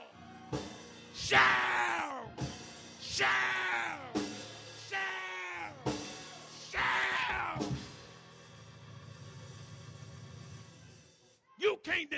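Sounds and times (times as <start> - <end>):
church audience yelling and shouting: 0.0 - 2.4, 3.0 - 7.9.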